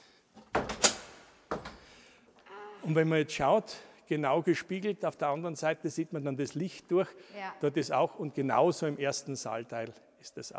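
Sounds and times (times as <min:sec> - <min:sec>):
hidden door behind a false bookshelf swinging open: 0:00.4 - 0:01.9
wooden clunks and rattles: 0:00.4 - 0:02.0
speech: 0:02.8 - 0:10.5.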